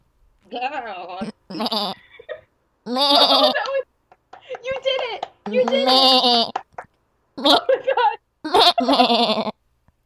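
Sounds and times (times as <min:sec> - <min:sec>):
speech: 0:00.5 - 0:02.0, 0:02.9 - 0:03.7, 0:05.5 - 0:06.6, 0:08.6 - 0:09.6
person imitating a goat bleat by closing the throat: 0:01.2 - 0:02.0, 0:02.9 - 0:03.6, 0:05.5 - 0:06.6, 0:07.4 - 0:07.7, 0:08.4 - 0:09.6.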